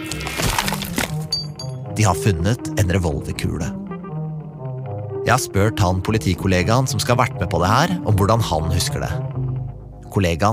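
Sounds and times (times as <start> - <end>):
block of wood being split: 0.0 - 1.3
speech: 2.0 - 3.8, 5.2 - 9.4, 10.1 - 10.5.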